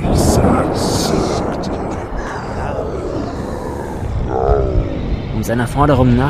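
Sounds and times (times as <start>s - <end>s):
heavy thunder rolling and rumbling: 0.0s - 6.2s
speech: 5.5s - 6.2s.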